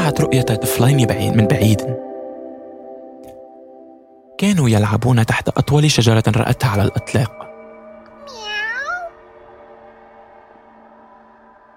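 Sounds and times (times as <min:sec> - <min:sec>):
speech: 0:00.1 - 0:02.1, 0:04.4 - 0:07.4
cat meowing: 0:08.2 - 0:09.1.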